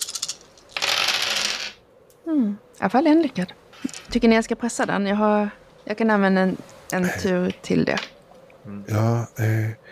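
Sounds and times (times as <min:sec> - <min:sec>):
dice rolled during a tabletop role-playing game: 0:00.0 - 0:01.8, 0:03.8 - 0:04.1
speech: 0:02.3 - 0:09.9.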